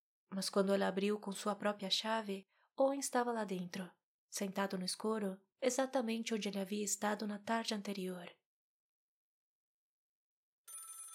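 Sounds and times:
speech: 0:00.3 - 0:08.4
telephone bell ringing with a bright steady trill: 0:10.7 - 0:11.1.

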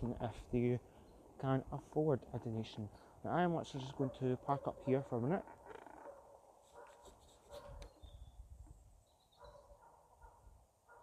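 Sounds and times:
speech: 0:00.0 - 0:05.6
police dogs barking: 0:03.9 - 0:05.3, 0:06.0 - 0:07.9, 0:09.4 - 0:11.0.

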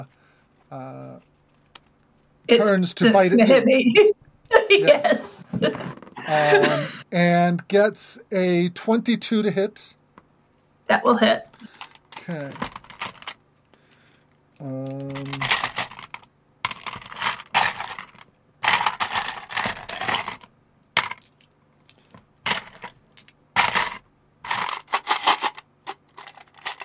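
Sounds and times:
speech: 0:00.0 - 0:01.3, 0:02.4 - 0:10.0, 0:10.9 - 0:12.7, 0:14.6 - 0:15.6
person humming: 0:02.5 - 0:03.8, 0:06.2 - 0:07.0
laughter: 0:02.6 - 0:04.0, 0:04.6 - 0:07.4
handful of dice rattling and rolling across a hard surface: 0:14.9 - 0:21.4, 0:22.5 - 0:26.8.

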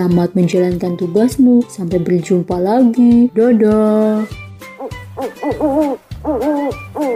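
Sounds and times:
speech: 0:00.0 - 0:04.4, 0:05.2 - 0:07.1
owl hooting: 0:04.7 - 0:07.1.

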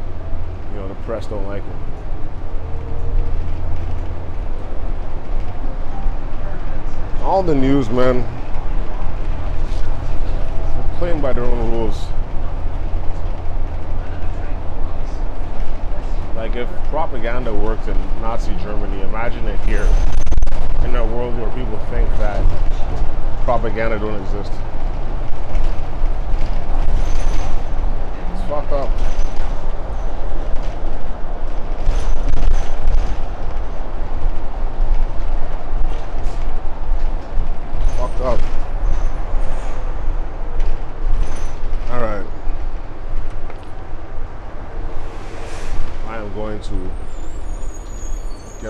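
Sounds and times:
bus interior engine rumble while riding: 0:00.0 - 0:48.6
speech: 0:01.0 - 0:02.4, 0:07.2 - 0:08.4, 0:11.0 - 0:12.2, 0:16.4 - 0:20.1, 0:20.8 - 0:24.8
squeaks inside a moving bus: 0:26.8 - 0:27.8, 0:37.8 - 0:40.0, 0:41.1 - 0:41.9, 0:46.6 - 0:48.6.

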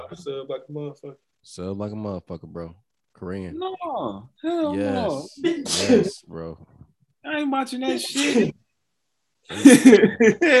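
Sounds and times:
speech: 0:00.1 - 0:08.6, 0:09.5 - 0:10.5
sneeze: 0:04.7 - 0:06.2, 0:07.9 - 0:08.5
laughter: 0:04.7 - 0:06.5, 0:09.5 - 0:10.5.

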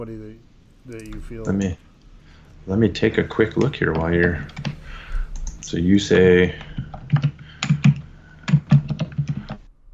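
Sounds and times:
speech: 0:00.0 - 0:01.9, 0:02.6 - 0:04.8, 0:05.6 - 0:07.3
fast typing on a computer keyboard: 0:06.8 - 0:09.6.

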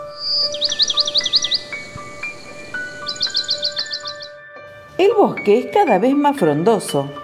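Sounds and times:
bird singing rapid trilling phrases of high chirps: 0:00.0 - 0:04.4
soft sustained musical tone: 0:00.0 - 0:04.9
speech: 0:05.0 - 0:07.2.

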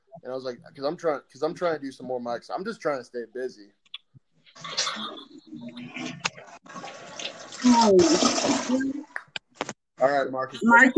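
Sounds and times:
speech: 0:00.2 - 0:03.8, 0:04.6 - 0:07.0, 0:07.6 - 0:09.1, 0:10.0 - 0:10.9
toilet flushing: 0:06.7 - 0:09.0.

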